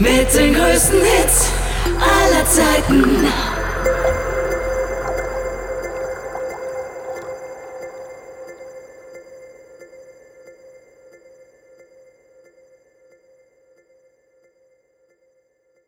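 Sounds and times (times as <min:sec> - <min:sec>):
light bubbly jingle at 90 BPM: 0:00.2 - 0:09.1.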